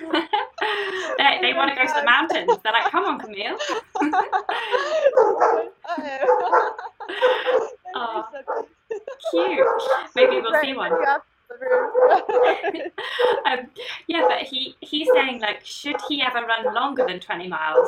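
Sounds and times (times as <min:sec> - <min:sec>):
people laughing: 0:00.0 - 0:11.0, 0:11.7 - 0:14.4
speech: 0:01.1 - 0:05.6, 0:09.4 - 0:11.3, 0:12.3 - 0:17.8
dogs barking and yipping: 0:04.8 - 0:13.5, 0:14.1 - 0:17.8.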